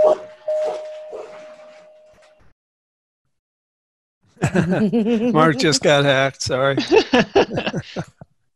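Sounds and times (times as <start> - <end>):
dogs barking at a doorbell: 0.0 - 1.4
doorbell chime ringing: 0.0 - 2.4
laughter: 4.4 - 8.2
speech: 4.5 - 8.1.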